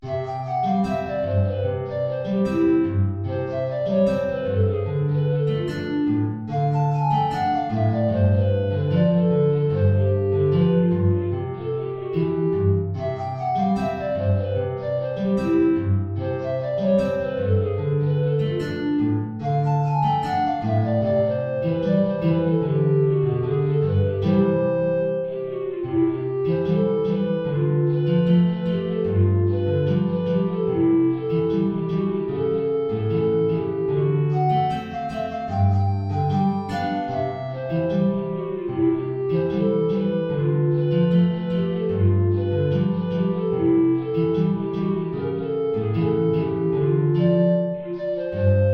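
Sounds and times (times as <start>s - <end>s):
guitar: 0.0s - 48.7s
tenor recorder: 0.0s - 48.7s.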